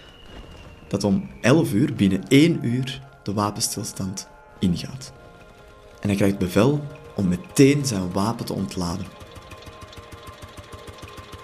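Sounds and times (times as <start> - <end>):
speech: 0.9 - 5.2, 6.0 - 9.2
courier's motorcycle engine puttering: 6.2 - 11.4.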